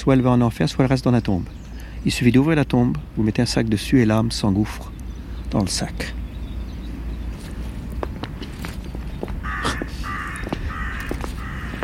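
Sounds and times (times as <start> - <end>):
speech: 0.0 - 4.9, 5.5 - 6.2
steady low outdoor rumble: 0.0 - 11.8
footstep-like taps: 7.4 - 11.8
crows cawing: 9.2 - 11.8.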